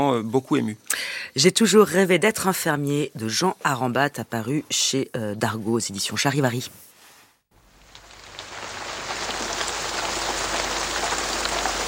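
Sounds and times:
speech: 0:00.0 - 0:06.9
steady rain spattering on a surface: 0:07.5 - 0:11.8.

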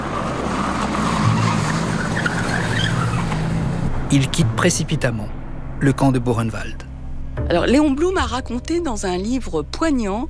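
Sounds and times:
SS car engine roaring while tearing away at speed: 0:00.0 - 0:05.8
car tires screeching and skidding: 0:00.0 - 0:05.8
speech: 0:04.1 - 0:10.2.

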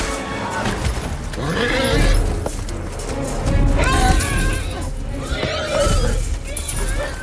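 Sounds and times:
horses whinnying and screaming in distress: 0:00.4 - 0:02.6, 0:03.7 - 0:07.2.

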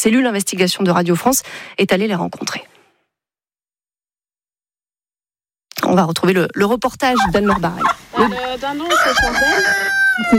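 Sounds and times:
speech: 0:00.0 - 0:02.7, 0:05.9 - 0:10.3
hen clucking on a farm in Haraucourt in the Ardennes France: 0:07.1 - 0:10.3.

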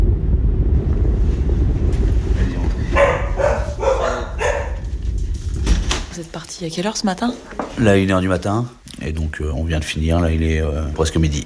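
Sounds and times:
churning waves of a rough, choppy sea: 0:00.0 - 0:06.4
wind buffeting over a rough sea: 0:00.0 - 0:08.7
speech: 0:06.3 - 0:11.4.

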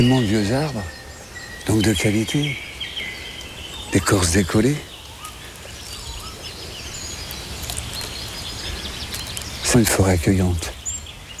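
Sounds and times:
speech: 0:00.0 - 0:01.0, 0:01.6 - 0:02.7, 0:03.9 - 0:04.9, 0:09.8 - 0:10.8
birds chirping and trilling in an old forest: 0:00.0 - 0:11.3
steady hiss: 0:00.0 - 0:11.3.

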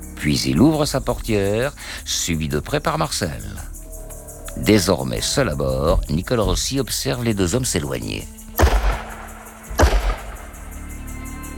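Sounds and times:
speech: 0:00.2 - 0:03.8, 0:04.6 - 0:08.4
dull low thuds: 0:08.5 - 0:10.8
sharp loud gunshot: 0:08.6 - 0:10.6.

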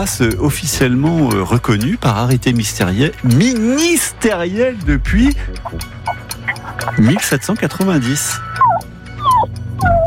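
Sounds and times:
speech: 0:00.0 - 0:06.0, 0:06.8 - 0:08.5
small dog yipping and whimpering: 0:08.4 - 0:10.0.

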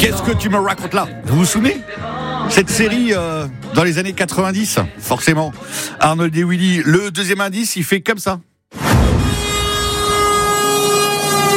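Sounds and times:
speech: 0:00.0 - 0:09.1
truck horn blaring with a rich droning tone: 0:09.0 - 0:11.5.

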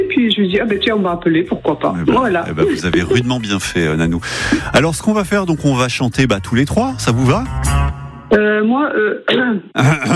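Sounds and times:
speech: 0:00.0 - 0:10.1
woman clearing her throat before singing: 0:09.2 - 0:10.1.

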